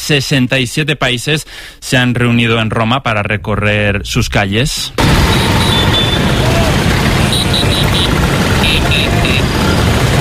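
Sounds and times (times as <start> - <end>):
speech: 0.1 - 5.8
many Vespa scooter engines rolling through the streets: 5.0 - 10.1.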